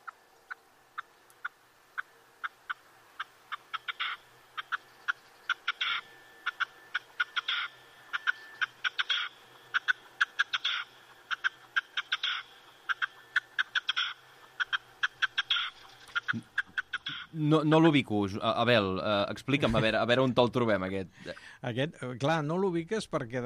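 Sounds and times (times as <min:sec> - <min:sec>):
red-legged partridge calling: 0:00.0 - 0:17.4
speech: 0:17.4 - 0:23.4.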